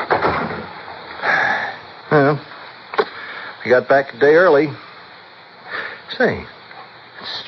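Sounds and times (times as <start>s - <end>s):
rustling and clatter: 0.0s - 1.2s
unlocked front door opening: 0.0s - 1.2s
speech: 2.1s - 2.5s, 3.6s - 4.8s, 6.1s - 6.6s, 7.2s - 7.4s.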